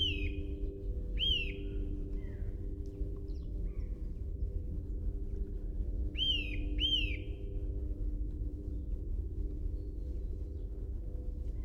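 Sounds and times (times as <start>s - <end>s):
Eurasian nuthatch giving piping calls: 0.0s - 0.6s, 1.2s - 2.3s, 6.2s - 7.4s
low hum: 0.0s - 11.6s.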